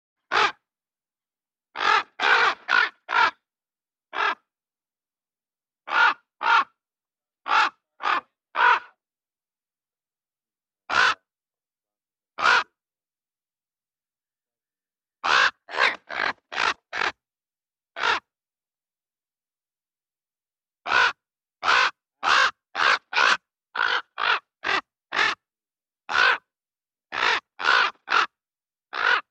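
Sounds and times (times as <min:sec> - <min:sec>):
raven calling: 0:00.3 - 0:00.6, 0:01.7 - 0:03.4, 0:04.1 - 0:04.5, 0:05.9 - 0:06.8, 0:07.4 - 0:09.0, 0:10.9 - 0:11.3, 0:12.4 - 0:12.8, 0:15.2 - 0:17.2, 0:18.0 - 0:18.3, 0:20.8 - 0:25.4, 0:26.1 - 0:26.5, 0:27.1 - 0:29.2.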